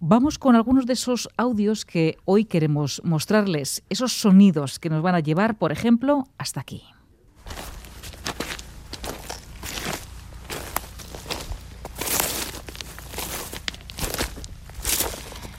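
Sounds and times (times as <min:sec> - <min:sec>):
speech: 0:00.0 - 0:07.0
footsteps on gravel and earth on a walk at a winery: 0:07.4 - 0:15.5.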